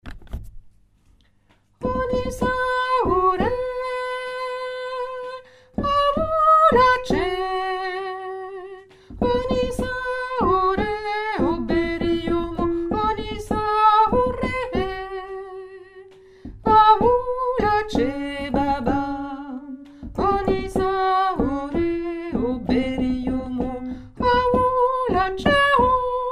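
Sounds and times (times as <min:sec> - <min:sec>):
soprano and tenor singing a condomble chant: 0:01.8 - 0:16.1, 0:16.7 - 0:26.3.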